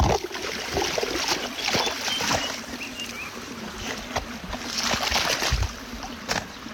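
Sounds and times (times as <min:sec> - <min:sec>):
sharp water splashes: 0:00.0 - 0:03.0, 0:04.0 - 0:06.4.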